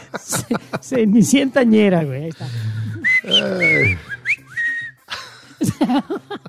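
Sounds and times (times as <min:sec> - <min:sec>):
laughter: 0:00.0 - 0:01.3, 0:05.1 - 0:06.4
speech: 0:00.1 - 0:02.6, 0:03.2 - 0:04.1, 0:05.6 - 0:06.4
person humming: 0:02.4 - 0:04.2
person whistling a short wavering melody: 0:02.8 - 0:05.2.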